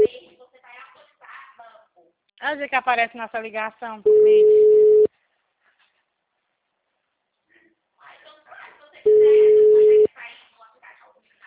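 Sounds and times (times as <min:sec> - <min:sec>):
speech: 0:02.4 - 0:04.6
telephone busy signal: 0:04.1 - 0:05.1, 0:09.1 - 0:10.1.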